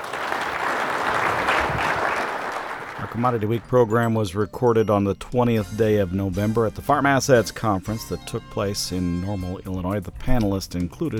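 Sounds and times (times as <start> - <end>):
audience applause at an agricultural conference: 0.0 - 3.7
speech: 3.2 - 11.1.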